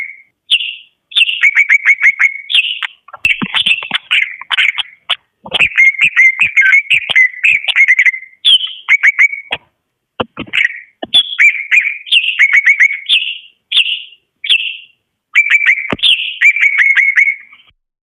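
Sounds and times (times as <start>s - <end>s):
bird whistled chirps: 0.0s - 9.6s, 10.4s - 17.8s
sharp clicks: 2.8s - 7.8s, 9.5s - 11.2s.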